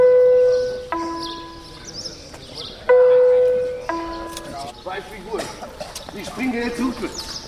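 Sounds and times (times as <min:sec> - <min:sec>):
two-tone gong chime in a prison signalling the start of work: 0:00.0 - 0:01.8, 0:02.9 - 0:04.5
inmates moving out to their workplaces: 0:00.8 - 0:07.4
murmur of indistinct inmate voices: 0:01.0 - 0:07.4.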